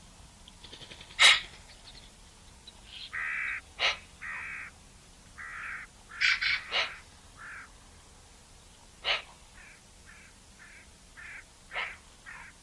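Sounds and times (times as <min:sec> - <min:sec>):
Eurasian magpie giving harsh scratchy calls: 0:00.6 - 0:02.1, 0:02.8 - 0:04.7, 0:05.4 - 0:07.7, 0:09.0 - 0:12.6.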